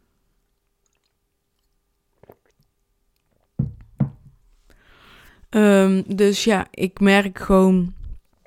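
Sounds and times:
person sipping water from a glass: 0:00.6 - 0:03.6
glass knocking dully: 0:03.6 - 0:04.4
speech: 0:05.5 - 0:08.0.

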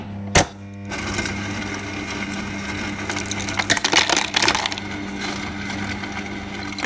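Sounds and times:
refrigerator ice dispenser humming: 0:00.0 - 0:06.8
ice cubes clattering and crunching out of a fridge dispenser: 0:03.1 - 0:06.8.

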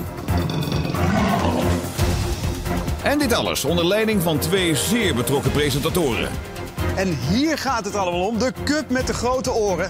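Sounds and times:
group of hungry tigers roaring and growling: 0:00.2 - 0:02.0
speech: 0:03.1 - 0:09.8.

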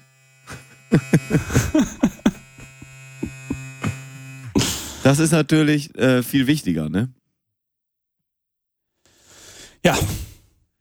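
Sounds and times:
small electric shaver with a faster motor humming: 0:00.0 - 0:05.4
laughter: 0:00.5 - 0:05.0
speech: 0:01.0 - 0:01.9, 0:05.0 - 0:07.2, 0:09.8 - 0:10.2.

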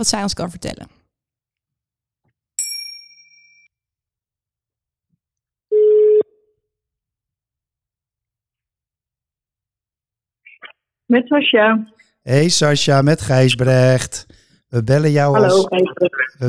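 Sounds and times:
speech: 0:00.0 - 0:01.0, 0:10.6 - 0:16.4
bright chime: 0:02.6 - 0:03.7.

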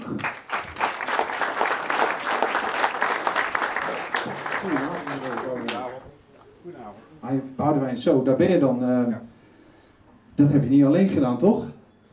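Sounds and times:
room full of people applauding: 0:00.0 - 0:06.1
speech: 0:07.3 - 0:09.3, 0:10.4 - 0:11.7.

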